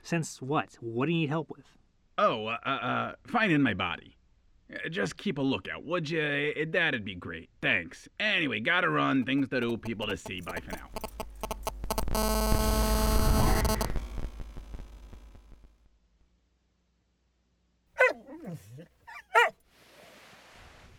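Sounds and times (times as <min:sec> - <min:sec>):
speech: 0:00.0 - 0:11.2, 0:12.2 - 0:13.0
loud droning hum: 0:10.1 - 0:15.2
guard dog barking: 0:18.0 - 0:19.6.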